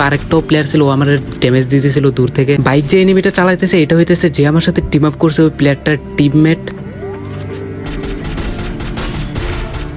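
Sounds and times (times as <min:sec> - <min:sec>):
speech: 0:00.0 - 0:06.8
rapid SCAR rifle gunfire in a video game: 0:07.8 - 0:09.9.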